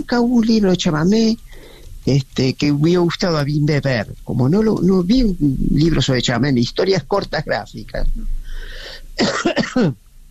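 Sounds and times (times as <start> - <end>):
speech: 0.1 - 1.4, 2.0 - 10.0
man with a cold coughing: 9.2 - 10.0.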